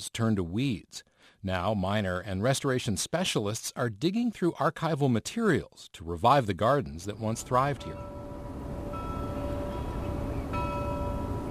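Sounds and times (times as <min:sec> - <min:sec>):
speech: 0:00.0 - 0:08.3
low rumble of wind: 0:07.3 - 0:11.4
buoy bell tolling: 0:07.8 - 0:11.4.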